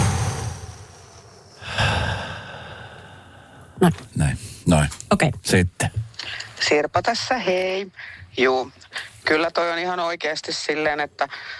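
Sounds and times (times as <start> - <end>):
slow deep breath in and long airy exhale as a breathing exercise: 0.0 - 3.8
speech: 3.8 - 4.4, 5.1 - 6.0, 6.7 - 11.5.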